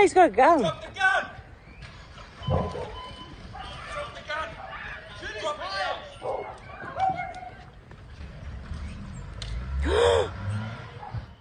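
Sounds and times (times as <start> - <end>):
speech: 0.0 - 0.9
noisy rumbling outdoor background: 0.0 - 11.3
woman gasping while filming on a mobile phone: 9.8 - 10.4.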